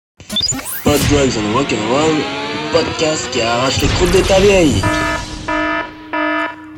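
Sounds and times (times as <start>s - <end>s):
electronic alarm sound effect with harsh buzzing tone: 0.2s - 6.7s
speech: 0.5s - 5.2s.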